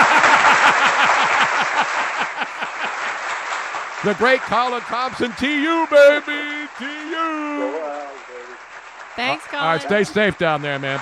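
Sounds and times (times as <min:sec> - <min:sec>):
laughter: 0:00.0 - 0:03.1, 0:04.0 - 0:08.4, 0:09.3 - 0:10.4
crowd applause: 0:00.0 - 0:11.0
steady rhythmic thumping: 0:03.8 - 0:10.4
speech: 0:04.0 - 0:07.8, 0:09.2 - 0:11.0.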